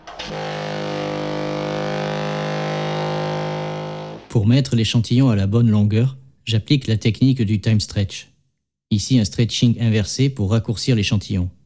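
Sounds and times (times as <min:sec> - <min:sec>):
boat engine drone: 0:00.3 - 0:04.2
speech: 0:04.4 - 0:08.3, 0:08.9 - 0:11.6.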